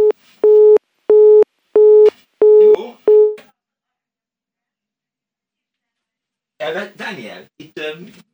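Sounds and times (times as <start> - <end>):
telephone busy tone beep after the caller hung up: 0.0 - 3.4.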